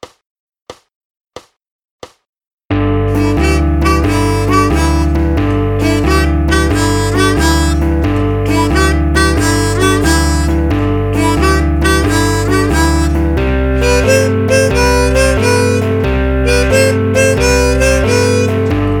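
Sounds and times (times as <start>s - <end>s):
blues music at 90 bpm: 2.7s - 18.9s.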